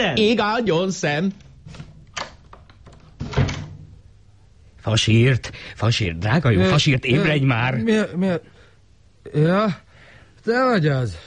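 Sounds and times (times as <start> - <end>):
speech: 0.0 - 1.8, 4.8 - 8.5, 9.2 - 9.8, 10.4 - 11.2
door creaking as it swings closed by itself: 1.4 - 4.0
door swinging shut by itself with a heavy thud: 3.2 - 4.0.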